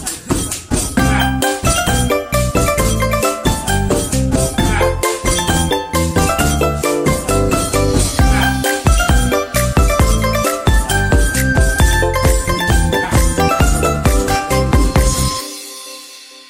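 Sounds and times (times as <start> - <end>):
Lunar New Year greeting ringtone music: 0.4 - 16.4.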